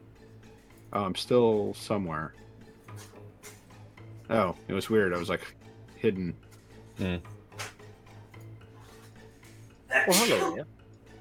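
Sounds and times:
speech: 0:00.9 - 0:02.4, 0:04.3 - 0:06.4, 0:07.0 - 0:07.4, 0:10.0 - 0:10.8
person sneezing: 0:09.9 - 0:10.6.

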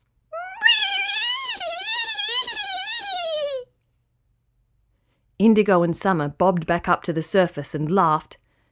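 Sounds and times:
woman imitating a dolphin call with a warbling squeal: 0:00.4 - 0:03.7
speech: 0:05.4 - 0:08.4.

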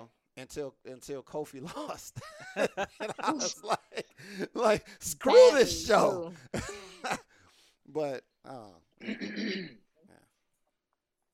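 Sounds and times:
speech: 0:00.4 - 0:07.2, 0:07.9 - 0:09.8
laughter: 0:01.6 - 0:07.3
person clearing throat: 0:09.0 - 0:09.9.

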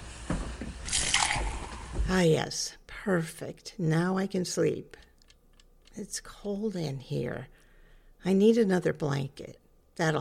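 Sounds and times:
speech: 0:02.1 - 0:05.0, 0:06.0 - 0:07.6, 0:08.2 - 0:10.1
soft wet clicks: 0:04.9 - 0:06.6.

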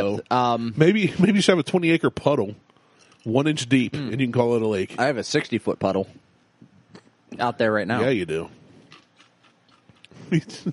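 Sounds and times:
speech: 0:00.0 - 0:06.2, 0:07.3 - 0:08.6, 0:10.1 - 0:10.7
crunching of ice cubes being chewed: 0:08.8 - 0:10.2.

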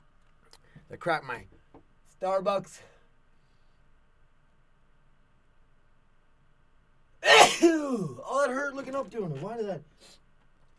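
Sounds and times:
speech: 0:00.9 - 0:01.6, 0:02.2 - 0:02.9, 0:07.5 - 0:10.2
loud sneeze: 0:07.2 - 0:08.2.

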